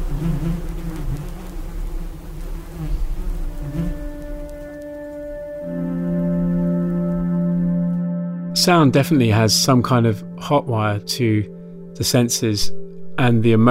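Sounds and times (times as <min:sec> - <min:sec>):
bee buzzing right up against a microphone: 0:00.0 - 0:08.0
speech: 0:08.7 - 0:13.6.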